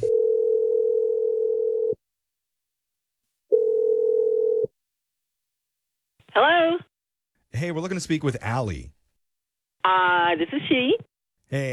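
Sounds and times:
telephone ringing tone heard over the line: 0.0 - 2.0, 3.5 - 4.7
speech: 7.6 - 9.0, 9.8 - 11.7.

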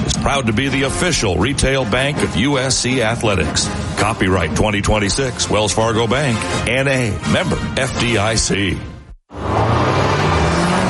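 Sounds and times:
speech: 0.2 - 9.0
car driving past: 9.3 - 10.8.

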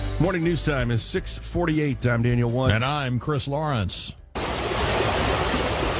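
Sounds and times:
speech: 0.2 - 4.2
stream raging out of its banks and down a country road: 4.3 - 5.9.

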